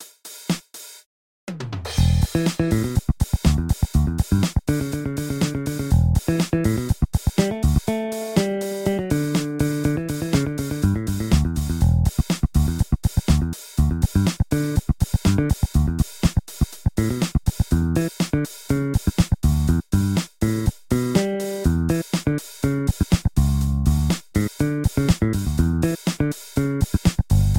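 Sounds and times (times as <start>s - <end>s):
fingered bass: 2.0s - 27.5s.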